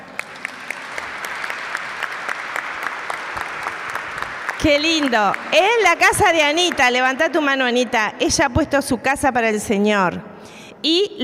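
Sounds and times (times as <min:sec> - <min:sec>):
audience applauding for a family group: 0:00.0 - 0:07.4
speech: 0:04.6 - 0:11.2.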